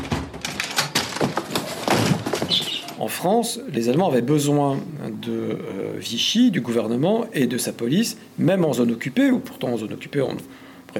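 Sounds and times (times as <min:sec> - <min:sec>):
door banging, rattling and scraping: 0:00.0 - 0:03.0
speech: 0:03.0 - 0:10.9.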